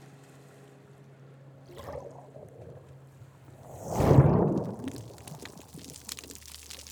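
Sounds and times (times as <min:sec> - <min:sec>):
loud fast-breaking waves churning: 0:01.7 - 0:06.8.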